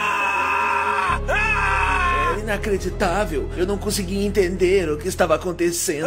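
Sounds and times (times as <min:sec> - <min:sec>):
horse screaming in pain: 0:00.0 - 0:02.4
speech: 0:02.5 - 0:06.0.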